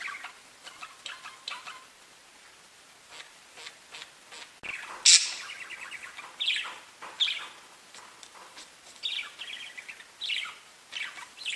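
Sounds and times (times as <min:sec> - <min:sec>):
budgerigar chirping: 0:00.0 - 0:01.9, 0:03.1 - 0:07.6, 0:09.0 - 0:11.5.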